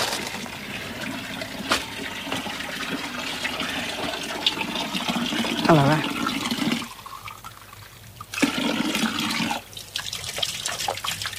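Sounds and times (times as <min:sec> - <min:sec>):
water gushing from a fountain into a glass: 0:00.6 - 0:11.3
speech: 0:05.7 - 0:06.1.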